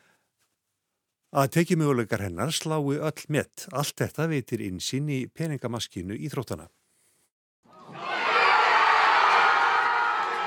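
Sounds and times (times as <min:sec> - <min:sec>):
speech: 0:01.3 - 0:06.8
crowd at a tennis club in Bromley England cheering a tournament win: 0:07.7 - 0:10.4.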